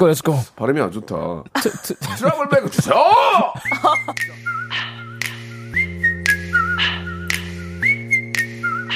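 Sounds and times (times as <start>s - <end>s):
speech: 0.0s - 4.8s
laughter: 1.6s - 4.3s
Korean pop song backing track with punchy beats: 2.3s - 8.9s
person whistling a bright wavering melody: 3.6s - 8.9s.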